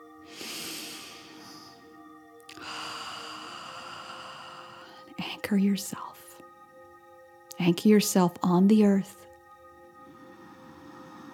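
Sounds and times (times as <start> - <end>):
steady sustained tonal background: 0.0 - 11.3
deep breath during a guided meditation: 0.2 - 5.2, 10.0 - 11.3
speech: 5.3 - 6.1, 7.6 - 9.2.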